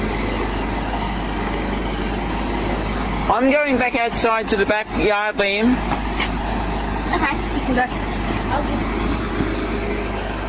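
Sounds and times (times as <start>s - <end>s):
crane's heavy diesel engine running: 0.0s - 10.4s
speech: 3.3s - 6.0s, 7.1s - 8.8s.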